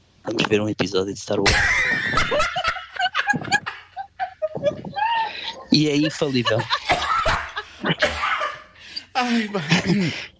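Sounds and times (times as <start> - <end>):
speech: 0.3 - 3.6, 5.7 - 6.9, 9.2 - 10.3
laughter: 1.4 - 8.8
harsh coughing fit: 6.7 - 8.8, 9.4 - 10.3.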